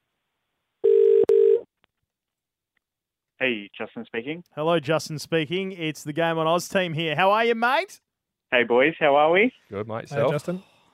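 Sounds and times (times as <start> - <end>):
telephone line tone pulses on an outgoing call: 0.8 - 1.7
speech: 3.4 - 10.7.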